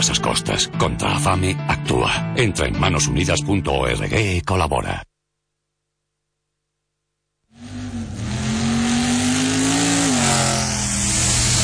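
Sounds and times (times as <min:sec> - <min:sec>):
speech: 0:00.0 - 0:05.1
car engine revving: 0:07.5 - 0:11.6.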